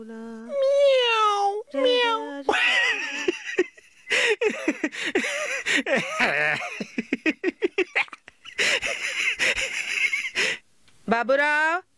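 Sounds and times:
speech: 0.0 - 0.6, 11.2 - 11.8
cat meowing: 0.5 - 2.6
laughter: 2.5 - 10.6.

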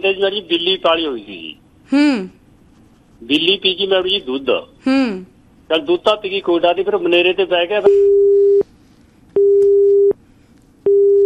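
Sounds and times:
speech: 0.0 - 2.4, 3.2 - 8.3
phone busy tone after a line is cut off mid-call: 7.8 - 8.6, 9.4 - 10.2, 10.9 - 11.2.

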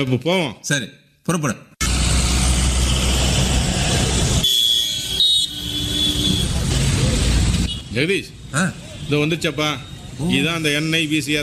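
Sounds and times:
speech: 0.0 - 1.7, 8.0 - 11.4
road rumble of a vehicle driving: 1.8 - 9.1.

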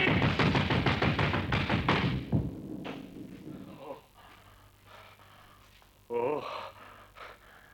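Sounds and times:
banging on a very strong glass window: 0.0 - 2.5.

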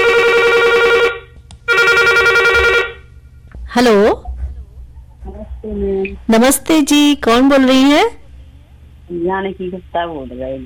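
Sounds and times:
telephone ringing with incoming call: 0.0 - 3.1
speech: 3.8 - 4.2, 5.6 - 8.2, 9.1 - 10.6.

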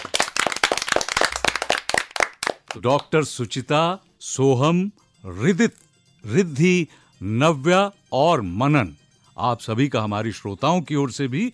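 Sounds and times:
small group applauding in a radio studio: 0.0 - 3.1
speech: 2.8 - 11.5.

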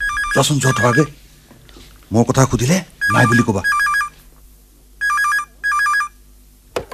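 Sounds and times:
telephone ringing in short electronic bursts: 0.0 - 1.1, 3.0 - 4.2, 5.0 - 6.2
speech: 0.4 - 1.2, 2.1 - 3.8.

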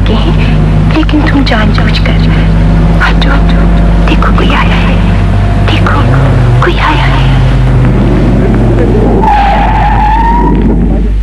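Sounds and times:
car engine roaring: 0.0 - 11.2
car tires screeching as it brakes hard to a sudden stop: 0.0 - 11.2
speech: 1.0 - 2.2, 3.0 - 5.0, 5.7 - 7.4, 8.8 - 9.6.

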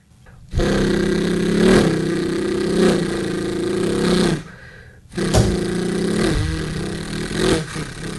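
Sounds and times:
vehicle engine revving: 0.5 - 4.4, 5.2 - 8.1.

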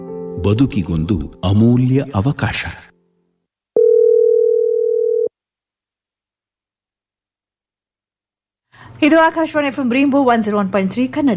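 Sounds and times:
speech: 0.4 - 2.9, 9.0 - 11.3
telephone beep: 3.8 - 5.3.

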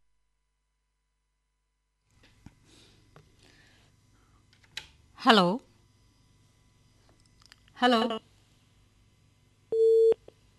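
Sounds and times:
speech: 5.2 - 5.7, 7.8 - 8.3
telephone busy tone as a caller's line drops: 9.7 - 10.2.

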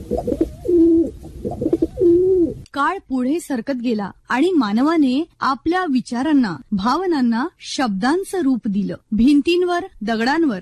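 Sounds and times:
pigeon cooing: 0.0 - 2.6
speech: 0.1 - 0.4, 2.8 - 10.5.

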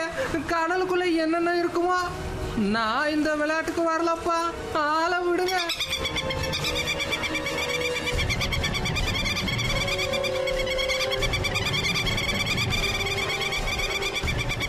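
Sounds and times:
speech: 0.3 - 7.1
chorus of birds calling as they approach to attack: 5.4 - 14.6.

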